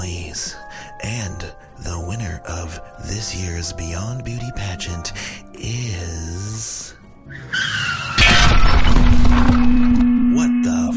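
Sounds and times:
speech: 0:00.0 - 0:07.9
taxi tires screeching in a skid: 0:07.3 - 0:08.9
taxi crashing through a wall with breaking debris and glass: 0:08.2 - 0:10.1.

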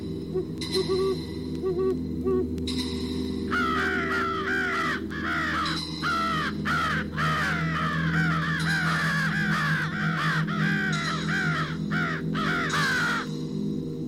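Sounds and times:
steady low hum: 0:00.0 - 0:14.0
owl hoots in an agitated squabble: 0:00.3 - 0:02.9, 0:03.5 - 0:13.4
crows cawing harshly in a squabble: 0:03.5 - 0:13.7.

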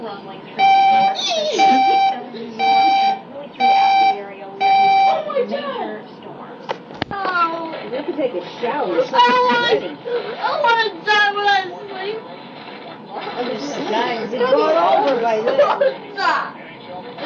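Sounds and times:
people talking: 0:00.0 - 0:17.2
television weather alert long electronic beeps: 0:00.6 - 0:05.3
laughter: 0:01.0 - 0:02.2, 0:09.0 - 0:10.4, 0:15.4 - 0:16.0.

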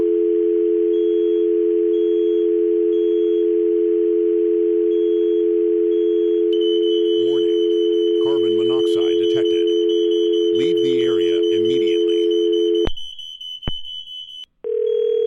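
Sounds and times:
telephone dial tone: 0:00.1 - 0:12.9, 0:14.7 - 0:15.2
faint electronic chirp: 0:06.5 - 0:14.5.

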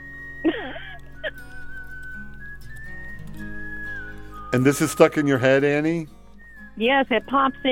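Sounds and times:
faint busy musical background: 0:00.0 - 0:07.7
whistled melody in spaghetti western style: 0:00.0 - 0:07.7
speech: 0:04.5 - 0:06.2, 0:06.8 - 0:07.7.

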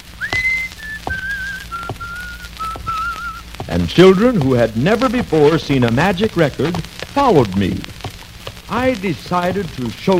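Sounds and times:
faint noise: 0:00.0 - 0:10.1
person whistling a simple melody: 0:00.2 - 0:03.4
soft thumps: 0:00.2 - 0:07.2
speech: 0:03.7 - 0:07.9, 0:08.7 - 0:10.1.

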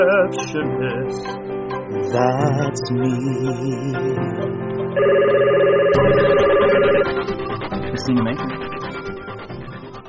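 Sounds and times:
speech: 0:00.0 - 0:06.3, 0:08.0 - 0:08.6
telephone ringing at a desk: 0:05.0 - 0:07.2.

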